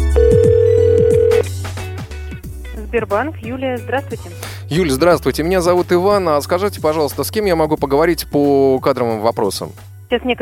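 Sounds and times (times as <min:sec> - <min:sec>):
telephone ringing tone on an outgoing call: 0:00.2 - 0:01.5
speech: 0:02.9 - 0:10.4.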